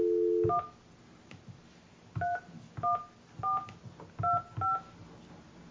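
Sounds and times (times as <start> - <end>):
telephone touch-tone dialing beeps: 0.0 - 0.7, 2.2 - 4.9.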